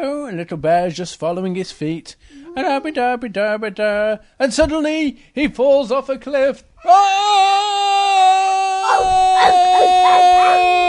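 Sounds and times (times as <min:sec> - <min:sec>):
speech: 0:00.3 - 0:10.8
dog howling: 0:08.2 - 0:10.8.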